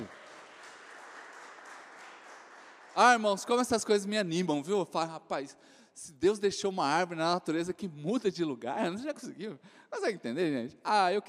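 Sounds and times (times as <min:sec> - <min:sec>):
large crowd applauding: 0:00.0 - 0:04.1
speech: 0:03.0 - 0:11.2.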